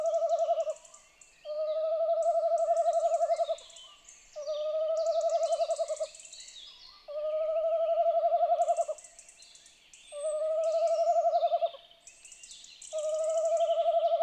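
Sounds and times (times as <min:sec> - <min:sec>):
tawny owl giving tremulous hoots: 0:00.0 - 0:00.8, 0:01.5 - 0:03.7, 0:04.4 - 0:06.1, 0:07.1 - 0:09.0, 0:10.2 - 0:11.8, 0:12.9 - 0:14.2
background hiss: 0:00.0 - 0:14.2.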